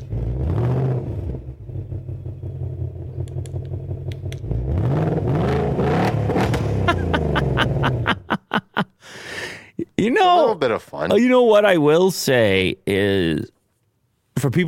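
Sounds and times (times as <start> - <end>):
2024 Mustang engine revving via remote key fob: 0.0 - 8.3
sharp popping engine blips: 0.0 - 8.3
laughter: 6.7 - 9.0
speech: 10.0 - 13.6, 14.4 - 14.6.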